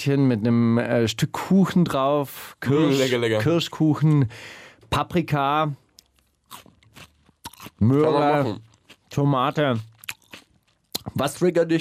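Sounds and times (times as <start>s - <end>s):
speech: 0.0s - 5.8s, 7.8s - 9.9s, 11.1s - 11.8s
soft mouth noises: 5.9s - 11.2s
crunchy chewing of food: 5.9s - 11.4s.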